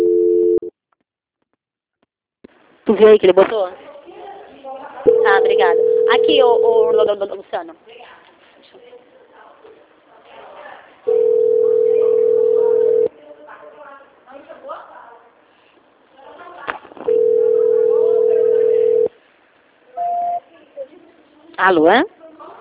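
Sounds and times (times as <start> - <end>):
telephone line beeps during a call transfer: 0.0 - 0.7, 5.1 - 7.1, 11.1 - 13.1, 17.1 - 19.1, 20.0 - 20.4
speech: 2.9 - 3.8, 5.2 - 8.2, 21.6 - 22.2.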